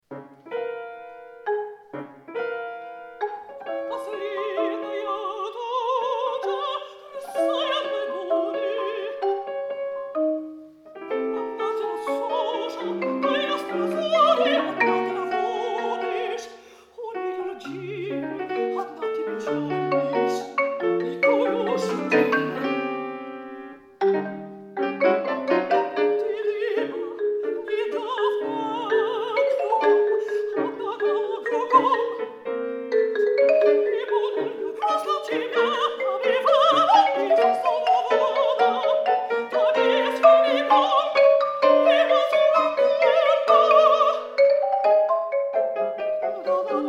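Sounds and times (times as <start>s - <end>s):
piano: 0.0s - 46.8s
marimba: 0.1s - 5.3s, 6.0s - 46.8s
alto voice singing: 3.5s - 9.6s, 10.9s - 46.8s.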